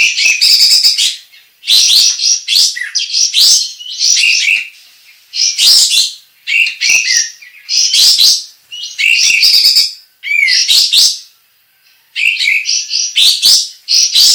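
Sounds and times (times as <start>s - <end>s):
Sooty-headed bulbul singing: 0.0s - 11.4s, 12.2s - 14.3s.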